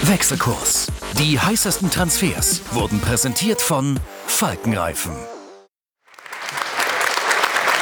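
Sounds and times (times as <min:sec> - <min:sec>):
speech: 0:00.1 - 0:05.4
applause from many hands: 0:06.0 - 0:07.7.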